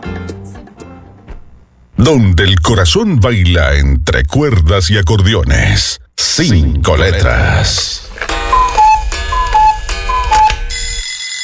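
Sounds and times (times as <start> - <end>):
speech: 2.0 - 8.3
alarm clock ticking: 8.3 - 11.4.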